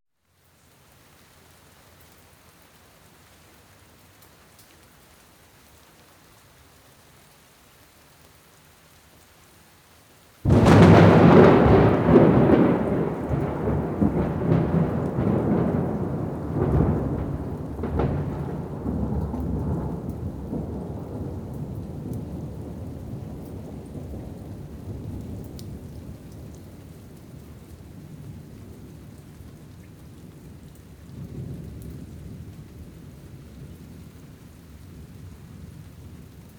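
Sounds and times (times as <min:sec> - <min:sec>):
thunderstorm: 0:10.4 - 0:36.5.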